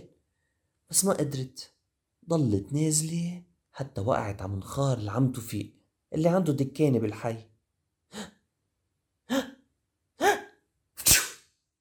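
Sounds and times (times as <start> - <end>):
speech: 0.9 - 7.5
man sneezing: 10.2 - 11.4.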